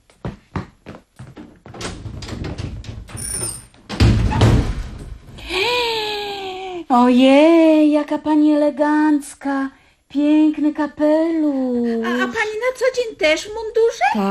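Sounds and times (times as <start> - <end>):
door being opened: 1.4 - 5.4
speech: 6.9 - 14.2.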